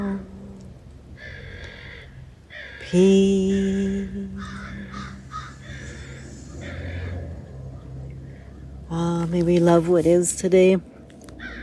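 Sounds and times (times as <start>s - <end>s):
crows cawing: 1.2s - 2.9s, 4.4s - 8.7s, 11.4s - 11.6s
speech: 2.9s - 5.1s, 8.9s - 10.9s.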